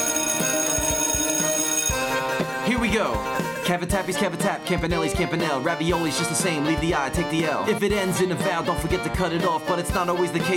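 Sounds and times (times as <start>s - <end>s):
bell ringing with quick metallic strikes: 0.0s - 2.4s
speech: 2.7s - 10.5s.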